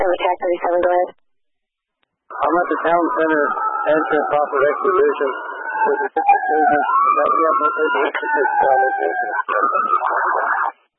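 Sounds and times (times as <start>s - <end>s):
man talking on a narrow crackly radio channel: 0.0s - 1.1s, 2.3s - 10.6s
speech: 0.2s - 1.2s, 2.3s - 10.6s
emergency unit siren wailing: 2.3s - 10.8s.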